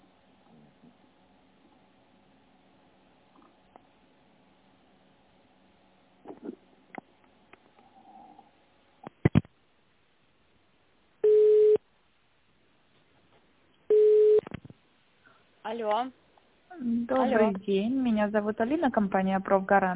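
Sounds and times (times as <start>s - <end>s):
telephone ringback tone while calling: 13.9s - 14.4s
speech: 15.6s - 16.2s, 16.8s - 19.9s.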